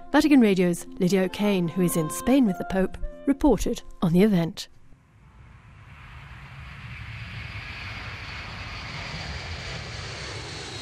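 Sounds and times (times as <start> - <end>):
speech: 0.1 - 4.8
airplane engine roaring as the aircraft touches down and rolls along the runway: 5.0 - 10.7.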